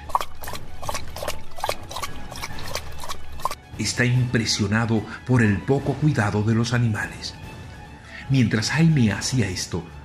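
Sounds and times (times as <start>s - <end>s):
dog lapping water from a bucket: 0.0s - 3.6s
speech: 3.8s - 7.4s, 8.3s - 10.0s.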